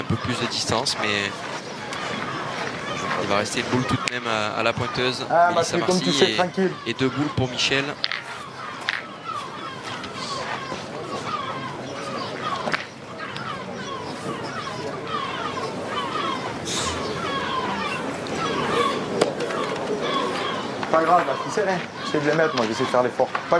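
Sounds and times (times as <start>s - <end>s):
chatter at a pétanque game: 0.0s - 23.5s
seagulls calling during a pétanque game: 0.0s - 23.5s
speech: 0.1s - 1.6s, 3.2s - 8.1s, 21.6s - 23.5s.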